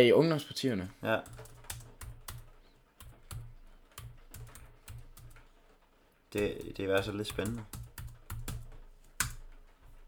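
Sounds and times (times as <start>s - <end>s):
speech: 0.0s - 1.5s, 6.3s - 7.8s
slow typing on a computer keyboard: 1.2s - 5.6s, 6.4s - 9.7s.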